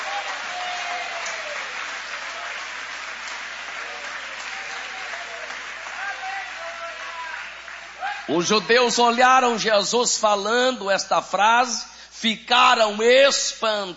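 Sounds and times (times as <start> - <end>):
audience clapping during a sermon: 0.0 - 8.6
speech: 8.3 - 13.9.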